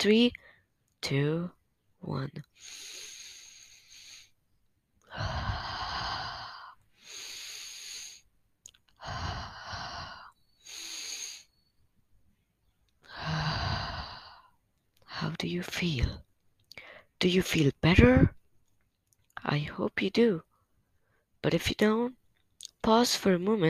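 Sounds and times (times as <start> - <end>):
speech: 0.0 - 0.4, 1.0 - 3.1, 15.2 - 16.3, 17.2 - 18.4, 19.4 - 20.5, 21.4 - 22.2, 22.8 - 23.6
deep breaths in and out: 2.5 - 8.4, 9.0 - 11.8, 13.0 - 14.6, 16.7 - 17.2.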